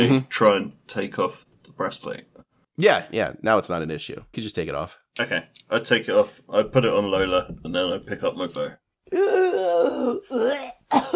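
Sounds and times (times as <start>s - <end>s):
speech: 0.0s - 11.1s
person vocally imitating a harsh hacking cough: 10.6s - 11.1s.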